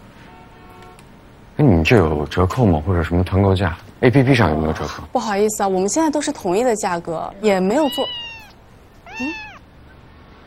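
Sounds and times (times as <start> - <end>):
speech: 1.6 - 8.2, 9.2 - 9.4
hotel guest's cat meowing at a reception desk: 7.6 - 9.7.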